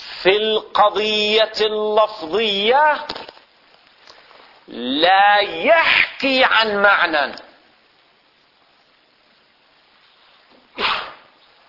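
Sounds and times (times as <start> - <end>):
speech: 0.2 - 3.2, 4.7 - 7.5
person sneezing: 10.7 - 11.4.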